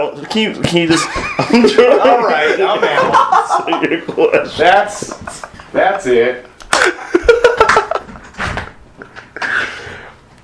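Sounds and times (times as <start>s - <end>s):
speech: 0.0s - 6.5s
people laughing and giggling: 0.9s - 5.7s, 6.7s - 8.3s
door opening and closing: 8.0s - 8.8s.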